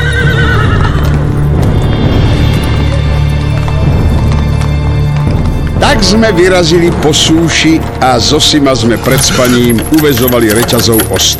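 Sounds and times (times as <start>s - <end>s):
mule neighing: 0.0s - 1.3s
mule hooves clip-clopping: 0.0s - 11.3s
speech: 6.0s - 11.3s.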